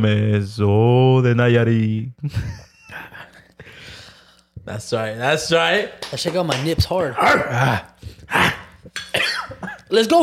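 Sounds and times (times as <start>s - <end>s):
speech: 0.0s - 3.1s, 4.7s - 10.2s
person coughing: 8.3s - 9.9s.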